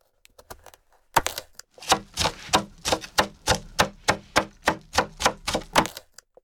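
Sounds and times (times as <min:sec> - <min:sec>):
knife slicing food into rounds on a cutting board for a salad: 0:01.2 - 0:06.0.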